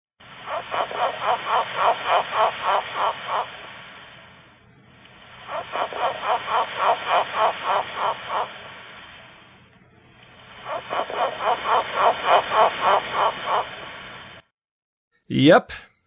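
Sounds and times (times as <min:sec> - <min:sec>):
frog calling in rapid pulsing croaks: 0:00.4 - 0:03.6, 0:05.5 - 0:08.7, 0:10.6 - 0:13.8
speech: 0:15.4 - 0:15.8.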